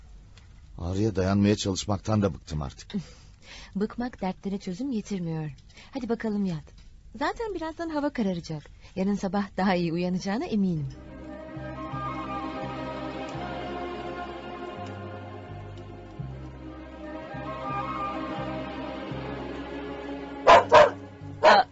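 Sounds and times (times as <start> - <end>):
speech: 0.8 - 11.7
low musical bed: 10.4 - 21.6
dog barking at home at dusk: 20.4 - 21.6.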